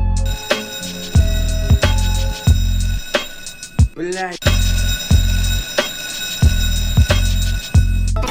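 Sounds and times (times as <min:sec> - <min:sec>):
alarm clock ringing: 0:00.0 - 0:08.2
speech: 0:04.1 - 0:04.5.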